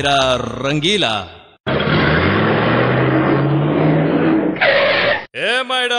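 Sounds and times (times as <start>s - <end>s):
speech: 0.0s - 1.4s, 5.4s - 5.9s
car engine revving as the car drives: 1.7s - 5.0s.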